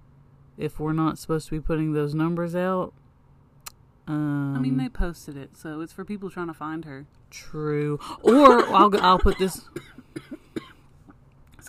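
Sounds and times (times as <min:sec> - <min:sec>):
speech: 0:00.6 - 0:03.0, 0:04.1 - 0:10.4
person coughing: 0:08.1 - 0:10.8.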